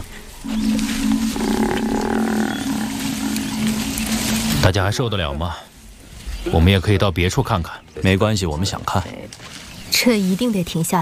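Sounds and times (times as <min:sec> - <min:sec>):
African buffalo bellowing distress call: 0:00.4 - 0:04.6
speech: 0:04.7 - 0:05.7, 0:06.4 - 0:11.0.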